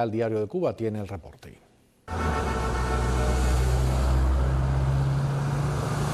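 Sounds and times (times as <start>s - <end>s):
speech: 0.0s - 2.5s
classic cars driving along a seafront avenue: 2.1s - 6.1s.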